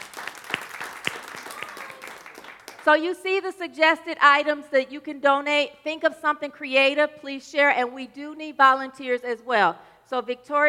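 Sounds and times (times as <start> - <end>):
small audience clapping: 0.0 - 2.9
speech: 2.8 - 10.6.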